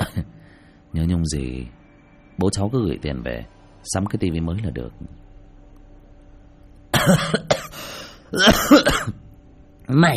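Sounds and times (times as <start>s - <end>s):
woman coughing hard: 0.0s - 0.2s, 6.9s - 9.2s
speech: 1.0s - 1.8s, 2.4s - 5.2s, 7.0s - 7.4s, 8.3s - 9.2s, 9.9s - 10.1s.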